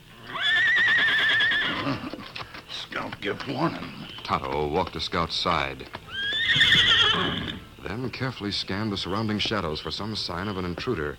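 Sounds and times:
horse whinnying: 0:00.1 - 0:02.4, 0:06.0 - 0:07.8
speech: 0:03.1 - 0:11.1.

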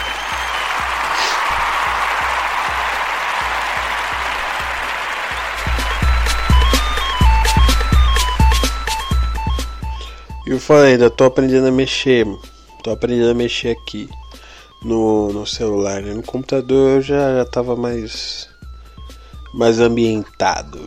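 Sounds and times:
clapping and crowd noise in an applause jingle: 0:00.0 - 0:09.0
bright bouncy electronic melody with punchy beats: 0:02.2 - 0:17.4
speech: 0:10.5 - 0:14.2, 0:14.8 - 0:18.5, 0:19.5 - 0:20.8.

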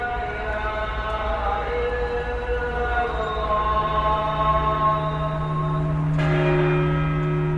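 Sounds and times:
large church bells ringing at midnight: 0:00.2 - 0:07.5.

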